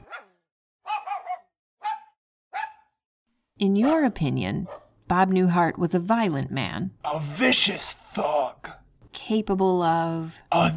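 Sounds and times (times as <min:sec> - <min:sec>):
dog barking: 0:00.0 - 0:03.0, 0:03.8 - 0:05.0
speech: 0:03.6 - 0:10.7.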